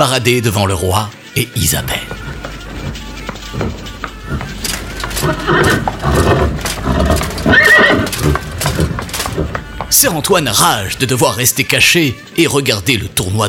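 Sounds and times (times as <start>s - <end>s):
speech: 0.0s - 2.2s, 5.2s - 6.3s, 10.0s - 13.4s
horse hooves clopping: 1.4s - 13.3s
horses neighing and whinnying at a tournament starting line: 1.8s - 11.0s.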